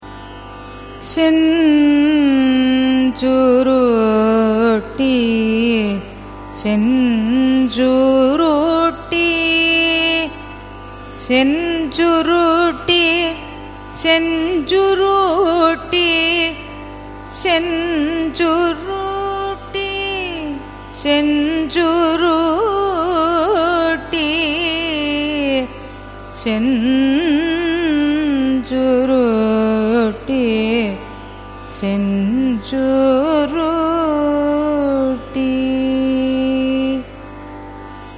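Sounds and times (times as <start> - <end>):
carnatic raga signature music: 0.0 - 38.1.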